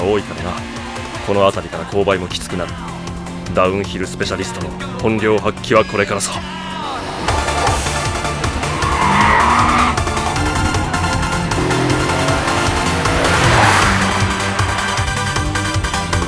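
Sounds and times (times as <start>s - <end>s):
speech: 0.0s - 0.7s, 1.3s - 6.8s
race car engine braking hard into a hairpin curve: 0.0s - 16.2s
race car tires squealing and skidding into a downhill hairpin curve: 0.0s - 16.2s.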